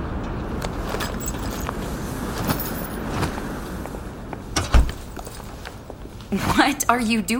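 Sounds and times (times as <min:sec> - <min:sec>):
faint shuffling movement: 0:00.6 - 0:06.8
door thudding shut behind someone coming inside: 0:04.6 - 0:05.1
speech: 0:06.3 - 0:07.3.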